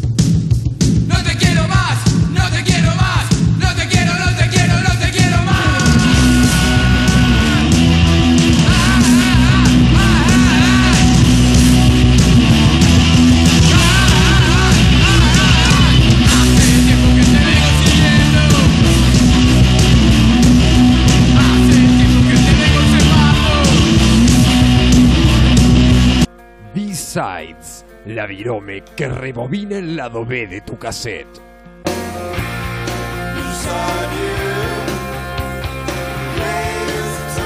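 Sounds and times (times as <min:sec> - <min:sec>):
punk rock song with raging screamed vocals, drums and distorted guitars: 0:00.1 - 0:26.3, 0:31.9 - 0:37.4
speech: 0:28.3 - 0:31.5.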